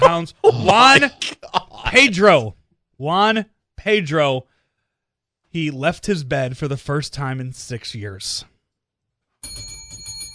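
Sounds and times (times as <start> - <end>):
speech: 0.0 - 4.5, 5.5 - 8.5
loud bell ringing rapidly: 9.4 - 10.3.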